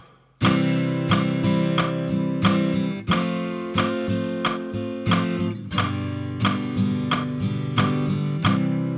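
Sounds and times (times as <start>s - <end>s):
guitar chords: 0.4s - 8.9s.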